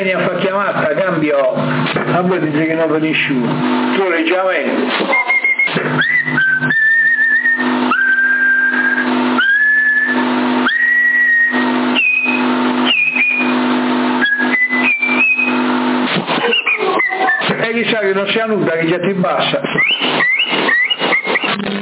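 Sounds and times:
speech: 0.0s - 6.8s, 18.1s - 20.2s
constant CB radio hiss and hum: 0.0s - 21.7s
whistling tones cutting into a CB radio channel: 5.1s - 15.7s, 16.3s - 17.6s, 19.6s - 21.7s.

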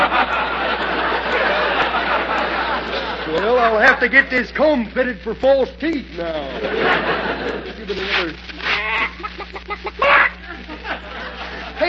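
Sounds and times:
laughter: 0.0s - 4.3s, 6.2s - 11.8s
speech: 3.8s - 8.6s
chicken squawk: 9.9s - 10.6s.

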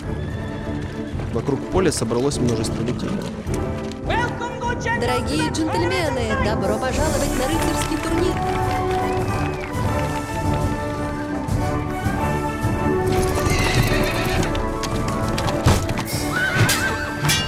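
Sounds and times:
horses neighing at a knights' jousting tournament: 0.0s - 3.6s, 13.1s - 15.3s, 16.1s - 17.3s
horses galloping at a knights' jousting tournament: 0.0s - 6.2s, 7.0s - 16.6s
speech: 1.4s - 3.8s, 4.8s - 9.0s.

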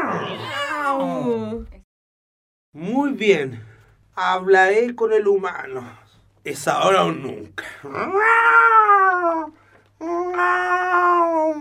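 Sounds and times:
cat meowing: 0.0s - 1.2s, 8.0s - 9.5s, 10.2s - 11.5s
speech: 0.9s - 1.8s, 2.8s - 11.5s.

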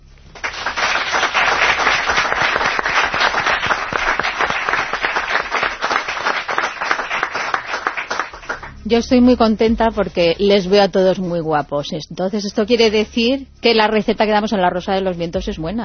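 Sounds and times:
studio audience applause in a radio studio: 0.3s - 8.7s
speech: 8.9s - 15.8s.

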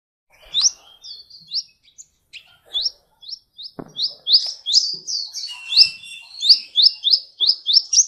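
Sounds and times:
Oriental magpie-robin singing sparse sweet rising whistles: 0.3s - 8.0s
dull knock: 3.8s - 4.2s.

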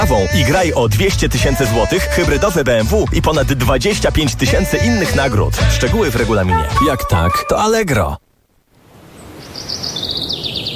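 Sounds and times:
speech: 0.1s - 8.2s
small birds singing: 9.1s - 10.7s.

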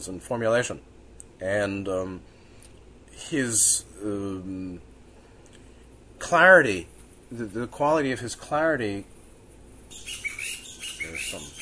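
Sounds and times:
speech: 0.0s - 2.4s, 3.2s - 4.9s, 6.2s - 9.1s, 11.1s - 11.5s
hiss: 0.0s - 11.5s
loud birds calling in spring mating season: 9.9s - 11.5s.

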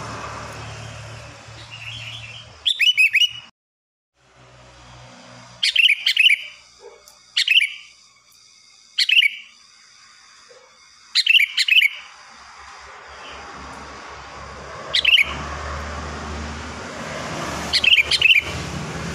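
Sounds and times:
sooty-headed bulbul singing bubbly whistled phrases: 1.7s - 3.5s, 5.6s - 6.6s, 7.4s - 7.9s, 9.0s - 9.5s, 11.2s - 12.1s, 15.0s - 15.4s, 17.8s - 18.5s.

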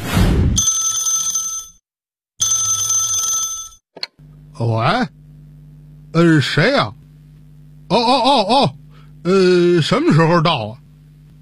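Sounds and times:
telephone ringing with an incoming call: 0.6s - 1.8s, 2.4s - 3.8s
speech: 4.6s - 5.2s, 6.2s - 7.0s, 7.9s - 10.8s.

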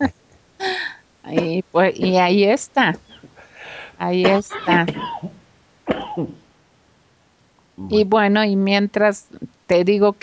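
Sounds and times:
speech: 1.3s - 3.1s, 4.0s - 6.4s, 7.8s - 10.2s
hoarse cough: 4.2s - 6.4s.

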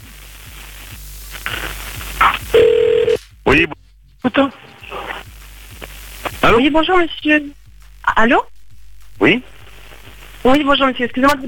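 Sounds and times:
telephone tones as a call is placed: 2.6s - 3.2s
speech: 3.5s - 4.7s, 6.4s - 8.5s, 9.2s - 9.5s, 10.4s - 11.4s.

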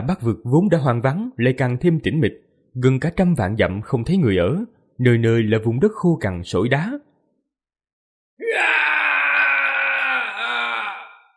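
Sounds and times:
speech: 0.0s - 7.1s
loud wailing cry: 8.4s - 11.3s.

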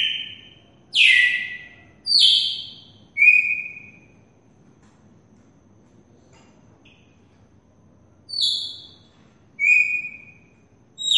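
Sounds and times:
red-cowled cardinal whistling: 0.0s - 4.1s, 8.3s - 9.0s, 9.6s - 11.1s.

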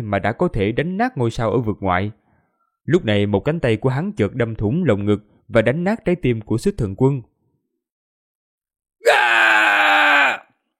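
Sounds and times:
speech: 0.0s - 2.2s, 2.9s - 7.3s
man screaming in pain: 9.0s - 10.6s.

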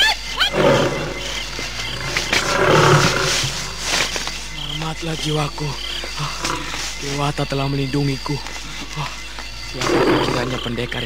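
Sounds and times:
male tiger roaring: 0.5s - 4.2s, 6.2s - 6.8s, 9.8s - 11.0s
speech: 5.0s - 11.0s.

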